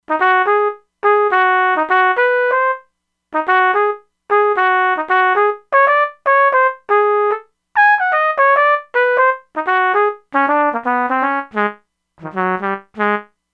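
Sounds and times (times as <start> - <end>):
synthesizer B-flat trumpet factory preset: 0.1 - 13.4.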